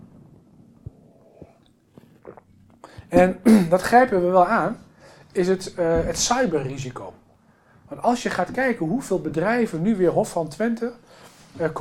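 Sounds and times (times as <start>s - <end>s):
person swallowing a drink: 0.7s - 3.7s
person sipping a drink: 0.8s - 3.3s
speech: 3.1s - 7.1s, 8.0s - 11.7s.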